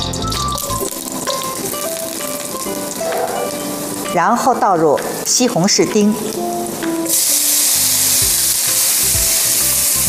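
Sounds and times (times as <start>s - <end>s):
garlic cloves frying in linseed oil in a hot wok: 0.6s - 4.1s, 6.2s - 10.0s
speech: 4.1s - 7.2s.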